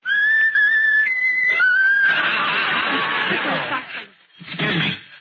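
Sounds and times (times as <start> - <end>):
talking bird whistling its favourite tune: 0.0 - 2.0
laughter: 1.8 - 4.9.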